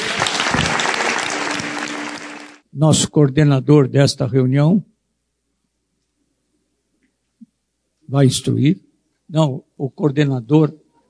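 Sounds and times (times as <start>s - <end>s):
congregation applauding at a church communion service: 0.0s - 2.6s
speech: 2.8s - 4.9s, 8.1s - 10.8s.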